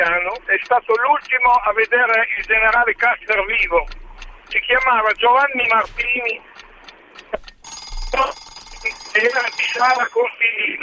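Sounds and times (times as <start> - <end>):
speech: 0.0 - 6.6, 8.1 - 10.8
electronic phone line tone as a call cuts off: 7.6 - 10.3.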